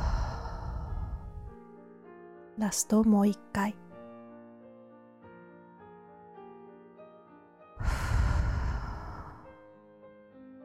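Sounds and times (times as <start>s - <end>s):
deep breathing in through the nose and out through the mouth during a guided meditation: 0.0s - 1.6s, 7.8s - 9.6s
speech: 2.6s - 3.8s.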